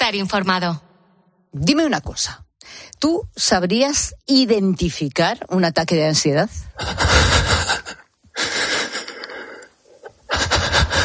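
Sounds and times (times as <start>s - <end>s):
speech: 0.1s - 0.9s, 1.5s - 7.6s
harsh ragged gasping breaths of someone struggling for air: 6.8s - 11.0s.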